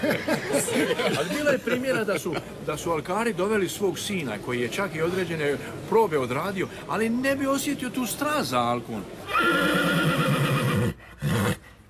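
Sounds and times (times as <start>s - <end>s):
laughter: 0.0s - 2.5s
speech: 0.1s - 10.2s
horse whinnying loudly: 9.3s - 11.6s.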